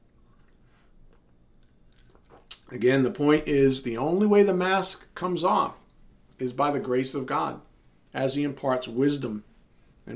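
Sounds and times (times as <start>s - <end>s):
sipping a drink: 0.0s - 2.7s
short swallow: 1.9s - 2.6s
speech: 2.7s - 5.8s, 6.4s - 9.5s.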